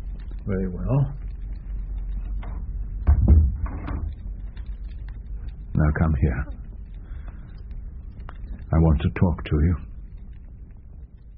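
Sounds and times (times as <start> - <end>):
speech: 0.5 - 1.2, 5.8 - 6.6, 8.7 - 9.9
wooden door shutting with a thud: 3.0 - 4.1.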